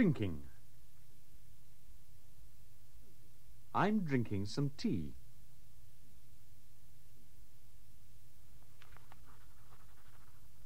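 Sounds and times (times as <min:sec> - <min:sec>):
speech: 0:00.0 - 0:00.5, 0:03.7 - 0:05.2
pen writing a letter: 0:09.2 - 0:10.6.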